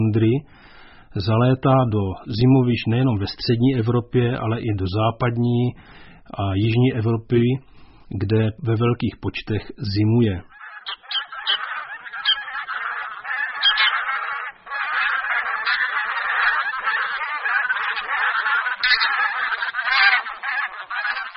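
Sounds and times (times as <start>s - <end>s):
speech: 0.1s - 0.6s, 1.2s - 11.0s
large flock of bean geese honking: 10.5s - 21.3s.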